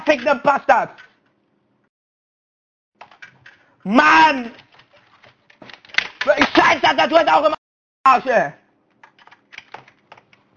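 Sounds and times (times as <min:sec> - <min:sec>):
speech: 0:00.1 - 0:01.1, 0:03.8 - 0:04.6, 0:06.2 - 0:08.6
quick irregular typing on a computer keyboard: 0:03.0 - 0:03.7, 0:04.5 - 0:06.6, 0:08.9 - 0:10.5.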